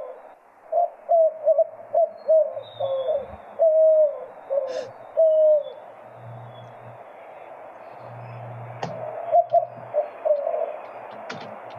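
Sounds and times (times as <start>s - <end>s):
white-winged dove cooing deep hooting coos: 0.0s - 7.0s, 8.0s - 11.7s.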